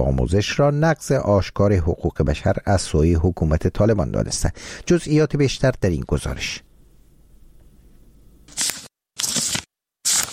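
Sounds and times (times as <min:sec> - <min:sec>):
speech: 0:00.0 - 0:06.7
book pages being turned by a schoolgirl: 0:08.5 - 0:10.3.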